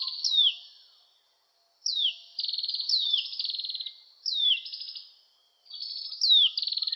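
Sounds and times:
Oriental magpie-robin singing: 0.0s - 0.8s, 1.9s - 5.0s, 5.7s - 6.9s.

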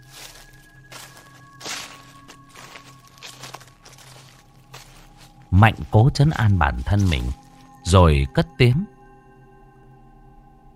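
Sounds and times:
footsteps outside: 0.0s - 7.8s
speech: 5.5s - 9.0s.

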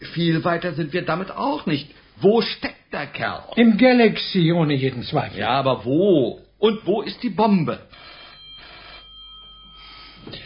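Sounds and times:
speech: 0.0s - 8.1s
telephone bell ringing: 7.9s - 10.4s.

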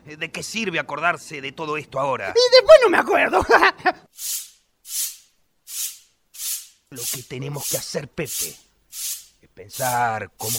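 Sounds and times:
speech: 0.1s - 5.0s, 6.9s - 10.5s
laughter: 2.6s - 4.0s
broom sweeping a floor: 4.1s - 10.5s.

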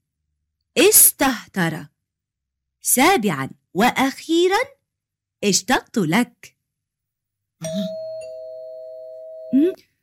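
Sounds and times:
speech: 0.8s - 1.9s, 2.8s - 4.8s, 5.4s - 6.6s, 7.6s - 8.0s
doorbell ding-dong chime: 7.6s - 9.6s.

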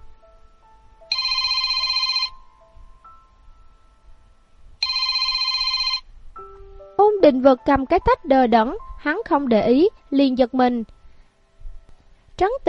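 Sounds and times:
telephone ringing with an electronic warbling tone: 1.1s - 2.6s, 4.8s - 6.1s
speech: 7.2s - 11.0s, 12.4s - 12.6s.

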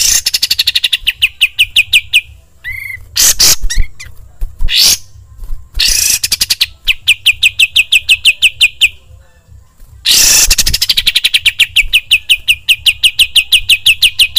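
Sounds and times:
bulbul singing scratchy chatter and repeated notes: 0.0s - 14.3s.

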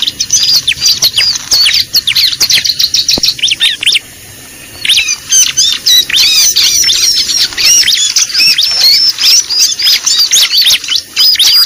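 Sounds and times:
bar-winged prinia lure call chirping: 0.0s - 11.6s.

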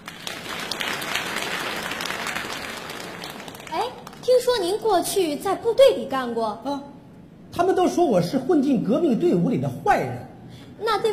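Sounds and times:
audience applause at a televised comedy sketch competition: 0.0s - 4.2s
speech: 4.2s - 6.9s, 7.6s - 11.1s.

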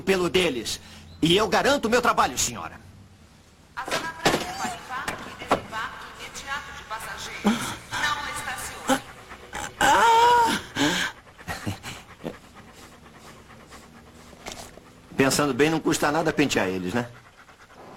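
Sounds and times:
dogs panting: 0.0s - 2.7s, 4.7s - 17.9s
speech: 0.0s - 2.9s, 15.2s - 17.2s
dogs whimpering: 7.4s - 17.9s.

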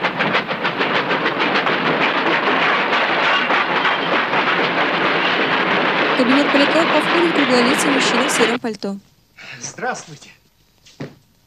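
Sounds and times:
train arriving at a station rumbling: 0.0s - 9.0s
speech: 6.6s - 10.4s.

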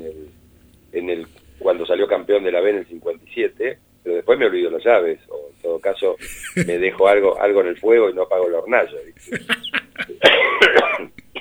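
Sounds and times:
speech: 2.0s - 9.6s
laughter: 5.5s - 11.3s
man coughing: 6.2s - 7.4s, 9.1s - 11.3s.

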